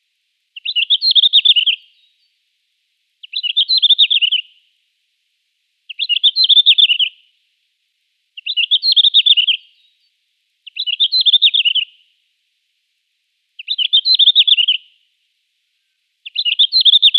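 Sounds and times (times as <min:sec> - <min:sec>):
red-flanked bluetail song of quick tinkling notes: 0:00.6 - 0:02.3, 0:03.2 - 0:04.6, 0:05.9 - 0:07.2, 0:08.4 - 0:10.0, 0:10.6 - 0:12.0, 0:13.6 - 0:15.0, 0:15.8 - 0:17.1.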